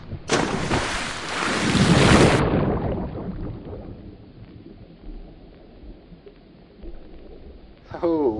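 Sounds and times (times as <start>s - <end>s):
water sloshing and bubbling: 0.0s - 8.3s
splash of someone jumping into water: 0.3s - 3.1s.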